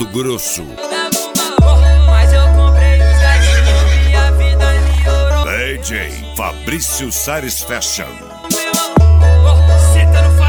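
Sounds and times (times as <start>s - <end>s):
speech: 0.0s - 1.8s, 5.7s - 8.6s
heavy steady bass drone and dense music: 1.6s - 7.4s, 8.1s - 10.4s
horse whinnying: 3.1s - 4.3s.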